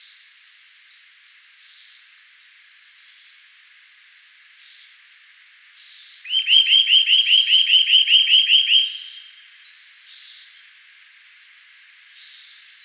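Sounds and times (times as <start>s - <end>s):
Eurasian nuthatch Sitta europaea calling with ringing upslurred notes: 6.3s - 9.4s.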